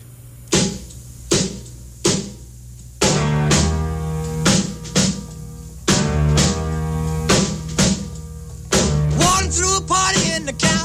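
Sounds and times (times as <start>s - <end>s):
1950s rock and roll band with guitar and piano: 3.0s - 10.8s
person singing in a 1950s rock and roll recording: 9.2s - 10.8s.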